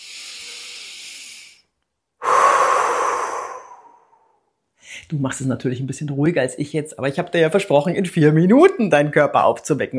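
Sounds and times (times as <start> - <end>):
loud full exhale through the mouth: 0.0 - 4.5
deep belly breathing inhale: 0.0 - 4.6
speech: 5.1 - 9.9.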